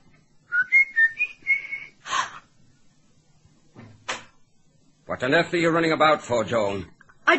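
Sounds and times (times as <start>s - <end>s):
person whistling a short clear tune: 0.5s - 2.0s
speech: 5.2s - 7.3s.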